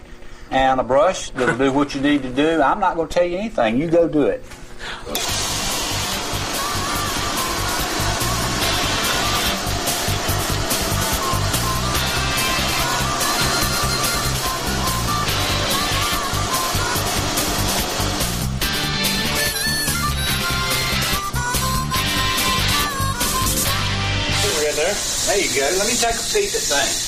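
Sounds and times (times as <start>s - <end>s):
speech: 0.5s - 5.4s, 26.0s - 27.0s
vacuum cleaner running: 4.9s - 27.0s.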